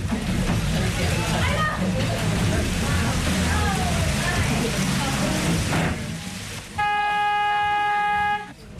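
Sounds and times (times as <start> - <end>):
steady rain pattering densely on surfaces: 0.0 - 8.5
sustained horn-like tone: 6.8 - 8.6.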